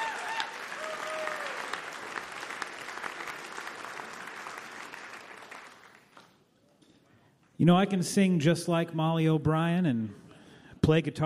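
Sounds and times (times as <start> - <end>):
crowd applauding two musicians: 0.0 - 6.4
speech: 7.6 - 10.2, 10.9 - 11.2.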